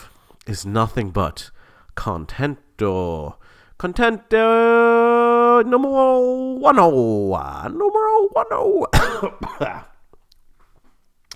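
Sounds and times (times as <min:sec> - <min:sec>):
speech: 0:00.5 - 0:04.9, 0:05.6 - 0:09.9
person coughing: 0:08.8 - 0:10.0
throat clearing: 0:08.8 - 0:10.0.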